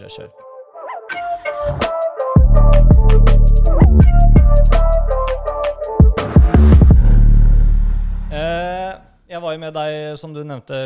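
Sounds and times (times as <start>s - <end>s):
speech: 0.0s - 0.4s, 9.4s - 10.8s
bright synth stabs in a quick rhythm: 1.9s - 8.9s
loud bass hits in a podcast jingle: 2.4s - 9.0s.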